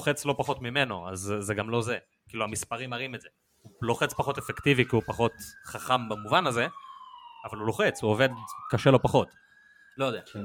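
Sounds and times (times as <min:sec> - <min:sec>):
speech: 0:00.0 - 0:09.4, 0:10.0 - 0:10.4
ambulance siren wailing outside: 0:03.8 - 0:10.4.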